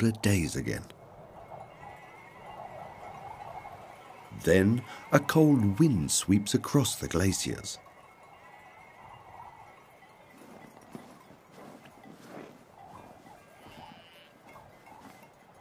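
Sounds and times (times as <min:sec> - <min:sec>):
speech: 0:00.0 - 0:01.0, 0:04.4 - 0:07.9
sheep bells clanking: 0:00.0 - 0:15.5
shuffle of sheep hooves along a trail: 0:00.0 - 0:15.5
flock of sheep bleating outdoors: 0:13.6 - 0:14.4.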